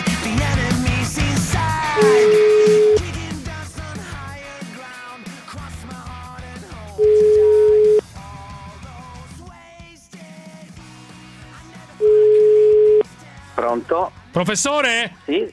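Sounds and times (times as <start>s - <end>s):
music: 0.0s - 15.5s
telephone ringback tone while a call is placed: 2.0s - 3.2s, 7.0s - 8.0s, 12.0s - 13.0s
speech: 14.0s - 15.5s.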